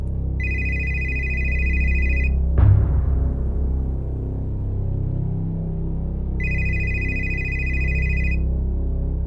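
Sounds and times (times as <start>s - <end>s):
low rumbling background: 0.0s - 9.2s
telephone ringing with a steady electronic tone: 0.4s - 2.4s, 6.4s - 8.4s.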